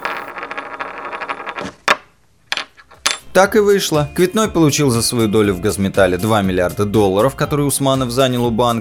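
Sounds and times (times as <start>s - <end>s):
coin spinning and rattling as it is tossed: 0.0s - 3.3s
speech: 3.4s - 8.7s.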